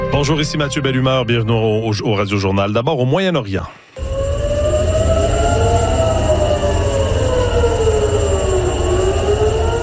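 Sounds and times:
speech: 0.1 - 3.8
rumbling background: 3.9 - 9.8
air raid sirens wailing in Tel Aviv Israel: 4.0 - 9.8.

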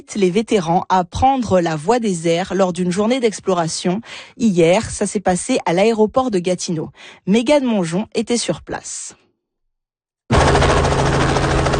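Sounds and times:
speech: 0.0 - 9.2
helicopter engines at an airport throttling up: 10.3 - 11.7.

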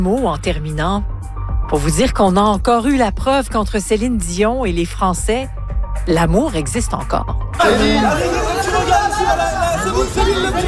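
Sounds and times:
speech: 0.0 - 1.1, 1.7 - 10.6
crowd of fans cheering at star's arrival: 7.6 - 10.6.

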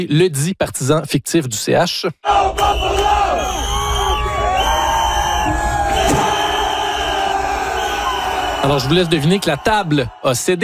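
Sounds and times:
speech: 0.0 - 3.7, 8.6 - 10.6
crowd cheering and yelling encouragement: 2.3 - 10.6.

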